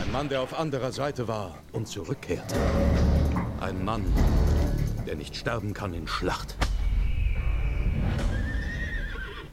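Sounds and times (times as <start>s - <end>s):
speech: 0.1s - 4.5s, 5.1s - 6.7s
horse neighing in a long quavering whinny: 7.7s - 9.5s.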